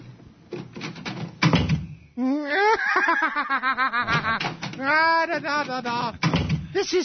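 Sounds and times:
clattering knocks: 0.5s - 2.0s, 4.0s - 6.8s
person laughing rhythmically: 2.2s - 6.2s
speech: 4.9s - 7.0s.

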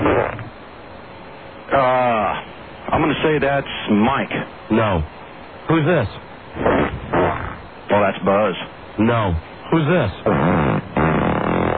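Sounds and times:
fart: 0.0s - 0.5s, 6.6s - 7.6s, 10.2s - 11.7s
speech: 3.0s - 7.0s, 8.2s - 10.9s.

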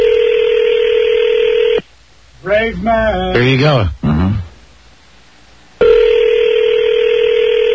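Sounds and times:
phone ringing unanswered on an on-air call: 0.0s - 1.8s, 5.8s - 7.7s
speech: 2.6s - 4.4s.

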